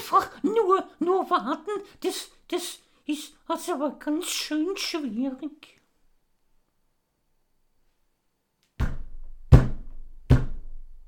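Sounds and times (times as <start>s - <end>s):
speech: 1.1s - 5.8s
heavy knocking on a door: 8.8s - 10.8s.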